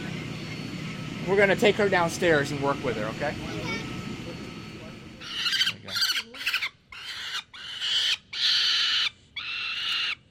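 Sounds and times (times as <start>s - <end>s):
speech: 1.3s - 3.8s
female peregrine falcon chick screeching while being fitted with a leg band: 5.2s - 10.2s.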